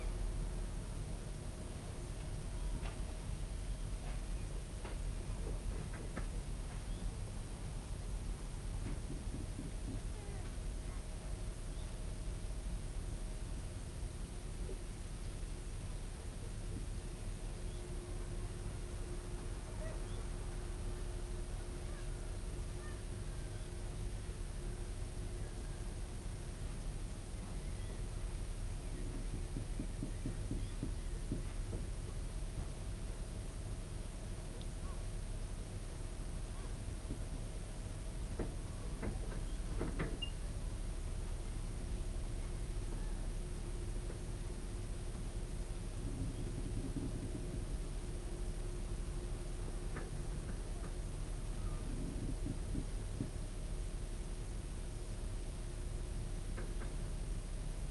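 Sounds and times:
boats floating at a pier in Norway: 0:00.0 - 0:57.8
engine in the background: 0:00.0 - 0:57.8.

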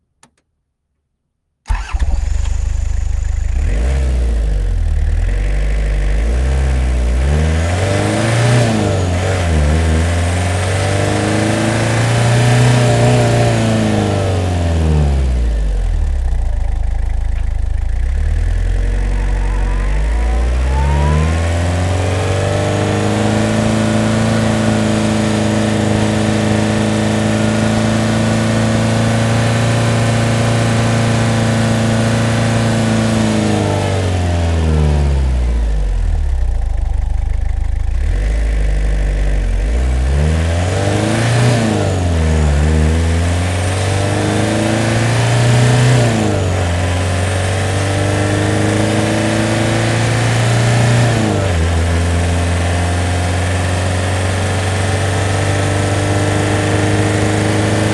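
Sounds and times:
Toyota Land Cruiser engine switching off: 0:01.7 - 0:06.2, 0:14.6 - 0:31.8, 0:34.7 - 0:40.0
Toyota Land Cruiser engine starting, recorded onboard: 0:01.7 - 0:57.9.

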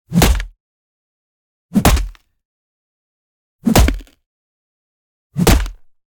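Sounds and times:
designed melee headbutt crack: 0:01.8 - 0:02.2, 0:03.7 - 0:04.2, 0:05.4 - 0:05.9.

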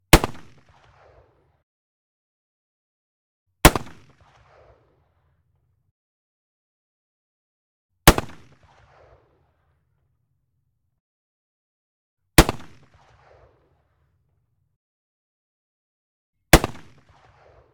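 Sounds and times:
M1903A3 rifle firing: 0:03.6 - 0:04.4, 0:08.1 - 0:09.0, 0:12.4 - 0:13.4, 0:16.6 - 0:17.6.

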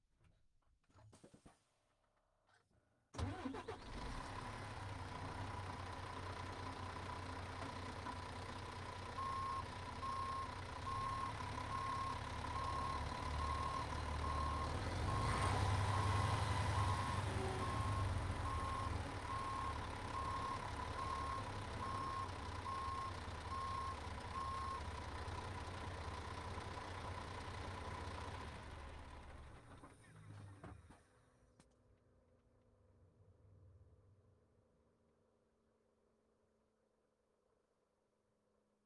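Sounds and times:
Lions coach engine starting reversing and stopping: 0:03.2 - 0:31.1.

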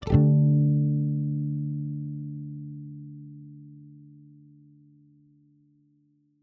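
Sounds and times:
electric guitar with custom strings quick strong muted strum: 0:00.0 - 0:01.7.

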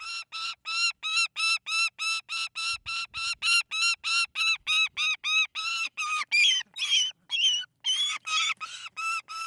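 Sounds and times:
saker falcon screeching: 0:00.0 - 0:09.4.

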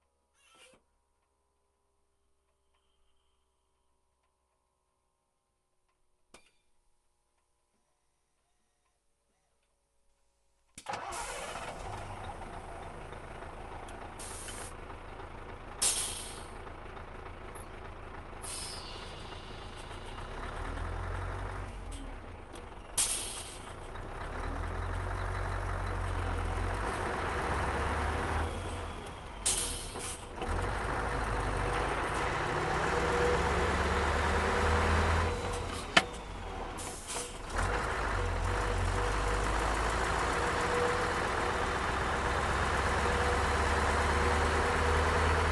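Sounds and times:
Scania 143 truck engine running onboard during driving and reversing: 0:10.9 - 0:45.5.

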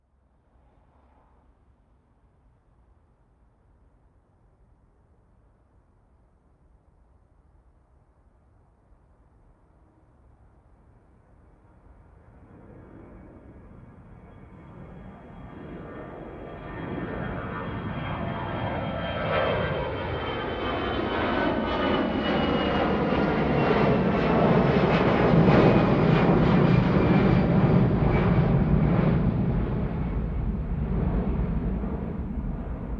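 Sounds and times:
planes taking off: 0:09.6 - 0:32.9.

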